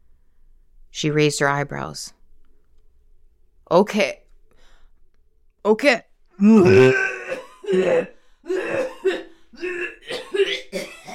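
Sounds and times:
speech: 1.0s - 2.2s, 3.7s - 4.2s, 5.6s - 7.1s, 7.7s - 8.9s
person coughing: 6.6s - 11.1s.

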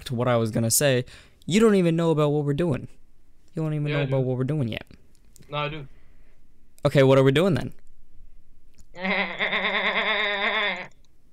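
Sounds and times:
speech: 0.1s - 3.0s, 3.6s - 6.0s, 6.8s - 7.8s
person imitating a goat bleat: 3.9s - 4.2s, 9.0s - 11.0s.

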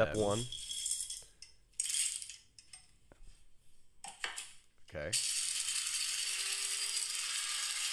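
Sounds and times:
speech: 0.0s - 0.6s, 4.9s - 5.3s
coffee beans pouring into a coffee grinder: 5.2s - 7.9s.

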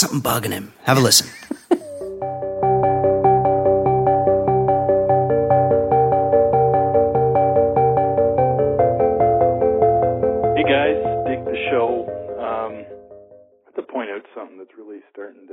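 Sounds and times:
speech: 0.0s - 1.4s, 14.4s - 15.5s
laughter: 1.2s - 2.1s
suspenseful instrumental music with bell-like plucked notes over low sustained tones: 2.0s - 13.5s.

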